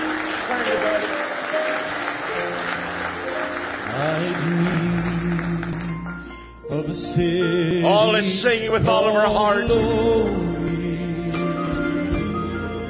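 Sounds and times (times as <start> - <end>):
audience applause: 0.0 - 6.1
organ or sustained music tones: 0.0 - 12.8
speech: 4.2 - 5.2, 6.8 - 10.5.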